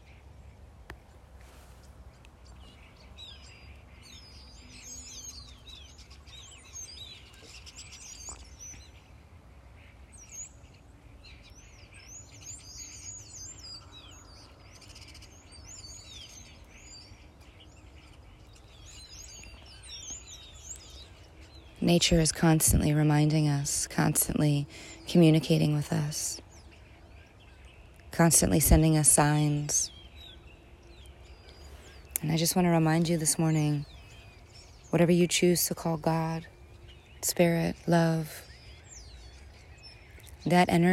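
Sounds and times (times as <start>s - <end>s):
birds chirping and singing: 0.0s - 40.9s
speech: 21.8s - 26.4s, 28.2s - 30.0s, 32.2s - 34.0s, 34.9s - 36.5s, 37.2s - 38.5s, 40.4s - 40.9s.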